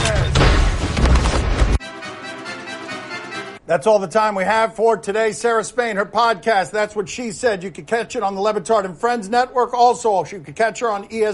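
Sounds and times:
loud explosion sound effect with deep rumble: 0:00.0 - 0:01.8
speech: 0:03.7 - 0:11.3.

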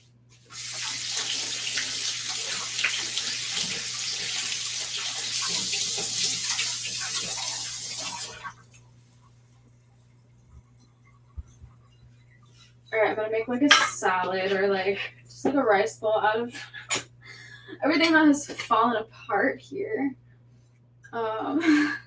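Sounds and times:
water running from a tap as hands are rinsed: 0:00.3 - 0:08.9
faint hum: 0:08.2 - 0:22.0
speech: 0:13.2 - 0:16.8, 0:17.8 - 0:20.2, 0:21.1 - 0:22.0.

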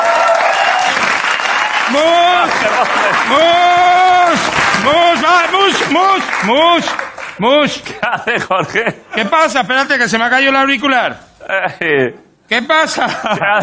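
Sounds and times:
voices whooping and cheering: 0:00.0 - 0:06.2
audience applause: 0:00.0 - 0:07.8
laughter: 0:01.9 - 0:09.7, 0:12.8 - 0:13.6
speech: 0:01.9 - 0:13.6.

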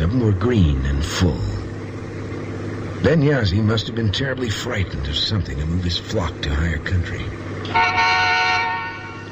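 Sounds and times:
speech: 0:00.0 - 0:01.6, 0:03.0 - 0:08.3
car horn honking: 0:07.6 - 0:09.3.

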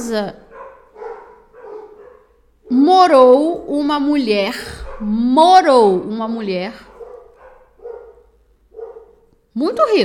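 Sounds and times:
speech: 0:00.0 - 0:00.5, 0:02.8 - 0:06.9, 0:09.6 - 0:10.0
several dogs barking: 0:00.4 - 0:02.7, 0:04.7 - 0:05.2, 0:06.8 - 0:09.4.

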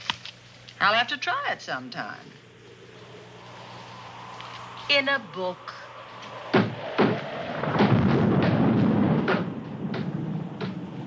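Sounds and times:
speech: 0:00.8 - 0:02.5, 0:04.9 - 0:05.8
wind rushing: 0:02.6 - 0:11.0
door banging against its frame in the wind: 0:06.5 - 0:10.8.

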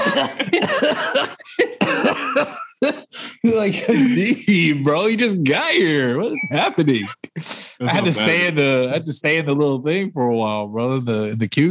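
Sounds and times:
harsh coughing fit: 0:00.0 - 0:04.8
laughter: 0:00.0 - 0:11.7
speech: 0:00.2 - 0:11.7.

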